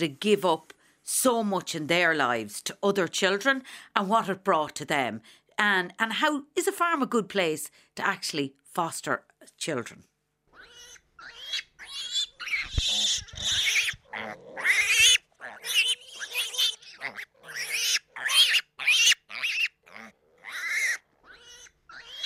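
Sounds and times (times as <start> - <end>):
speech: 0.0 - 10.1, 14.2 - 15.0
pigs grunting and squealing on a small pig farm in County Monaghan: 10.5 - 22.2.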